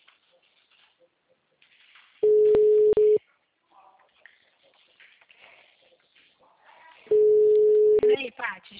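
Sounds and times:
faint sounds: 0.0s - 8.7s
telephone ringback tone while a call is being placed: 2.2s - 3.2s, 7.1s - 8.1s
speech: 8.5s - 8.7s.

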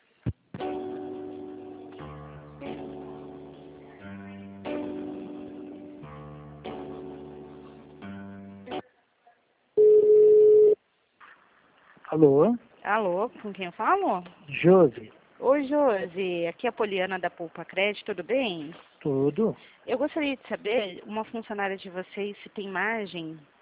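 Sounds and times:
telephone line hold melody during call transfer: 9.8s - 10.8s
telephone line steady beep: 9.8s - 10.8s
speech: 12.2s - 23.5s.

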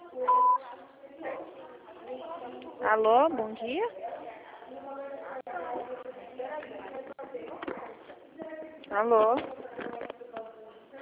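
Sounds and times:
voicemail recording beep: 0.2s - 0.6s
speech: 2.8s - 4.1s, 8.5s - 9.6s.

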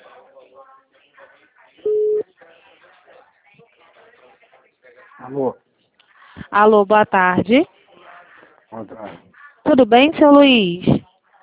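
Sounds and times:
telephone busy signal: 1.9s - 2.2s
speech: 5.2s - 5.6s, 6.5s - 7.8s, 8.8s - 11.0s.

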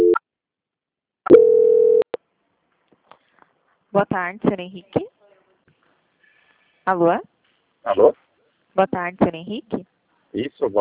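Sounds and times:
telephone transfer tone as a bank call is passed to the quality department: 1.3s - 2.1s
speech: 3.9s - 5.2s, 6.9s - 8.2s, 8.8s - 10.8s.

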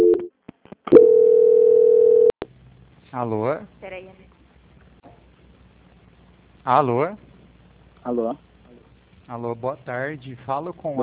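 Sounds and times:
steady mid-pitched telephone tone during a call transfer: 0.0s - 0.3s, 0.9s - 2.4s
speech: 3.1s - 4.3s, 6.6s - 7.3s, 8.0s - 8.5s, 9.3s - 11.0s.

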